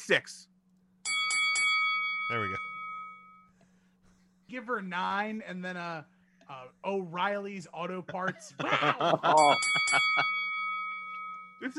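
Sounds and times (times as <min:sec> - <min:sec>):
speech: 0:00.1 - 0:00.5, 0:02.3 - 0:02.7, 0:04.5 - 0:10.4, 0:11.6 - 0:11.7
bright bell ringing: 0:01.0 - 0:03.6, 0:09.2 - 0:11.7
laughter: 0:08.1 - 0:10.4.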